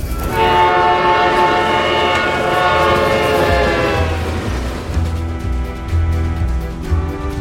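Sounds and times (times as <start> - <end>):
train rumbling past on the tracks: 0.0 - 7.3.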